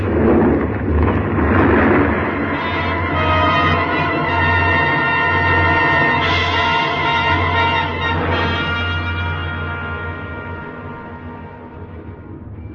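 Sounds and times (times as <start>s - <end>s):
avalanche of snow and ice sweeping down from a ridge toward a valley: 0.0s - 10.9s.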